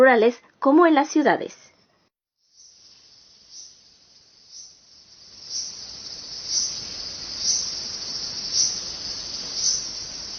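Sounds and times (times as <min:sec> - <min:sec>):
speech: 0:00.0 - 0:01.6
cicadas singing in a Japanese summer: 0:02.4 - 0:10.3.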